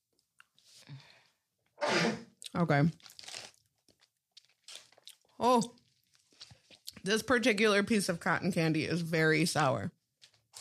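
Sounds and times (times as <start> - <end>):
short sneeze: 1.8 - 2.3
speech: 2.0 - 3.1, 5.4 - 5.8, 7.0 - 10.0.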